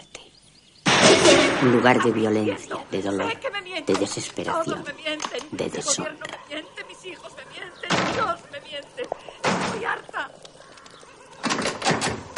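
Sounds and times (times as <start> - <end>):
door slamming shut in a house: 0.9 - 2.0, 9.4 - 9.9, 11.4 - 12.3
speech: 1.6 - 10.4.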